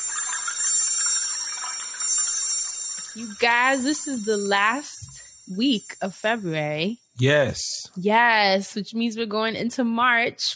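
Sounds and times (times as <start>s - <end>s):
metallic wind chimes ringing and shimmering: 0.0s - 7.1s
speech: 3.2s - 10.5s.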